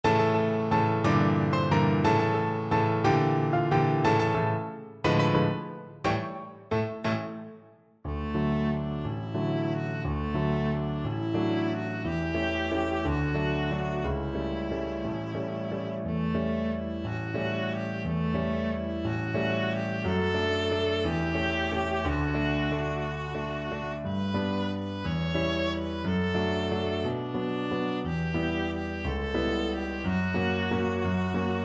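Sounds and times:
viola playing a waltz: 0.0s - 7.4s, 8.1s - 31.6s.

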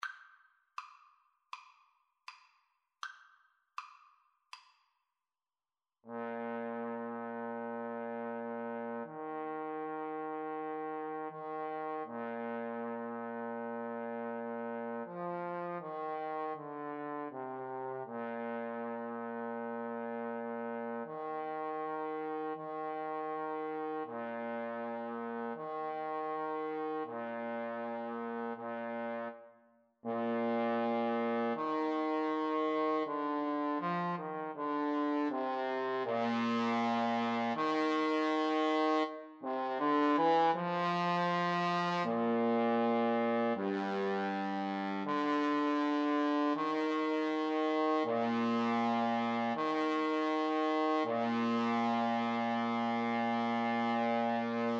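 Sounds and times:
trombone in a duet with trumpet: 6.1s - 29.4s, 30.0s - 54.7s
trumpet in a duet with trombone: 6.1s - 54.7s.

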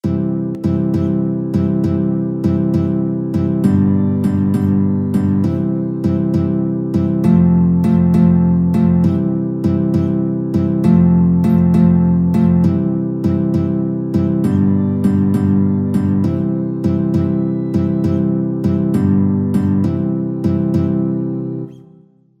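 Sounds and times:
clarinet playing a carol in a duet with guitar: 0.0s - 22.2s
guitar playing a carol in a duet with clarinet: 0.0s - 22.3s.

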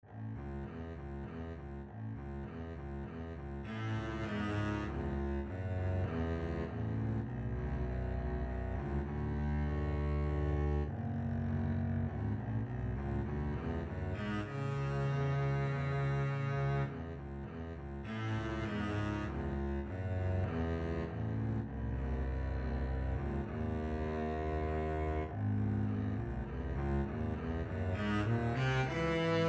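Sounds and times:
double bass duet: 0.0s - 29.4s.

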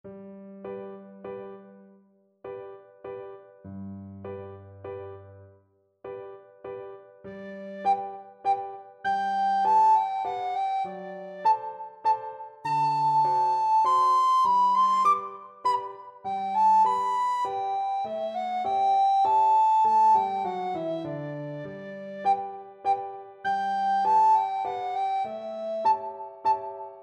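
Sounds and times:
recorder playing a classical piece: 7.4s - 27.0s.

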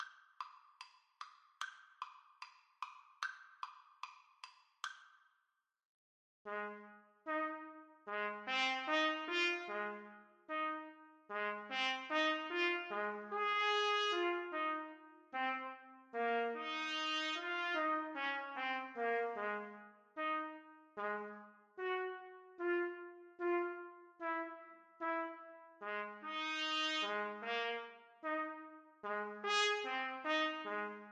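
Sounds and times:
trumpets playing: 6.5s - 31.0s.

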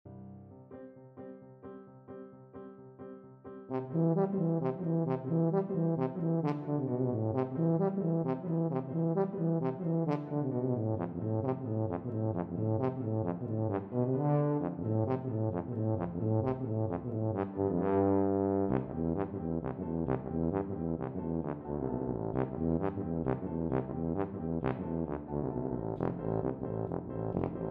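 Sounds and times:
tuba playing a folk dance: 3.7s - 27.7s.

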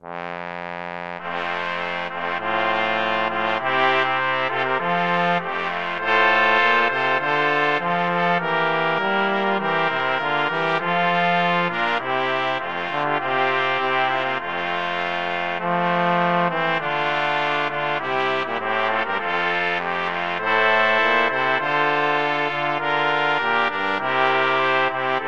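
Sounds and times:
brass quartet playing an overture: 0.0s - 25.2s.

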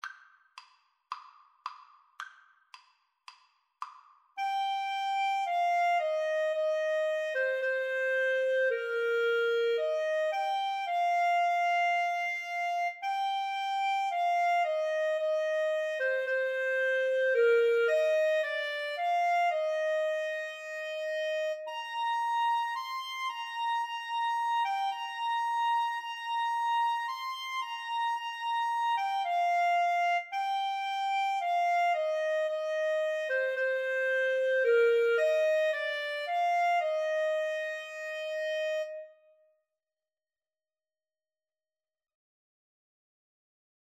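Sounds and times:
brass clarinet and saxophone duet: 4.4s - 39.2s.

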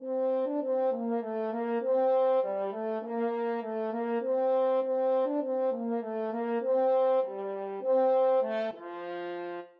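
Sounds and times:
french horn melody: 0.0s - 9.7s.

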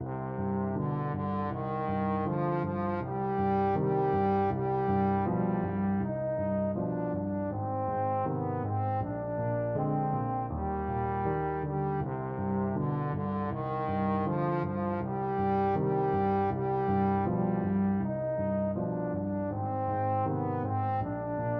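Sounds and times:
trombone playing a folk tune: 0.0s - 21.5s.

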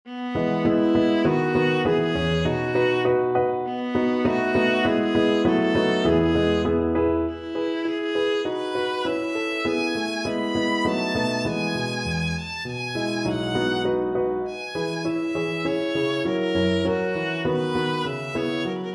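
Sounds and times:
viola playing a sonata: 0.0s - 18.9s.

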